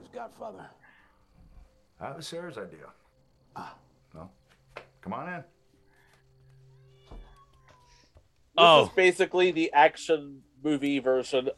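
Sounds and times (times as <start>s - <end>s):
speech: 0.2s - 0.9s, 2.0s - 3.0s, 3.6s - 4.4s, 5.0s - 5.6s, 8.6s - 11.5s
cat meowing: 6.7s - 8.9s.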